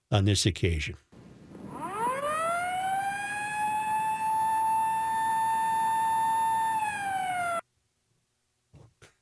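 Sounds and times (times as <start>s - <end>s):
speech: 0.1s - 1.1s
British European-style emergency vehicle siren: 1.5s - 7.6s.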